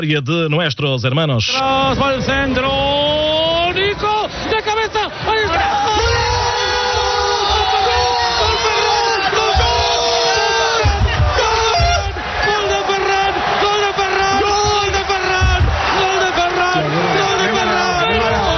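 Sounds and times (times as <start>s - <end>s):
speech: 0.0s - 4.6s
several voices cheering and shouting in a radio studio celebrating a football victory: 1.5s - 18.5s.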